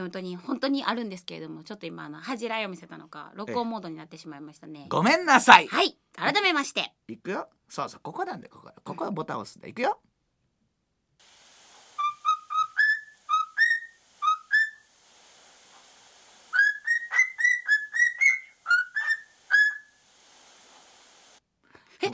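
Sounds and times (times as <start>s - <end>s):
speech: 0.0s - 10.1s
pet cockatiel singing whistled notes: 11.9s - 14.9s, 16.5s - 20.0s.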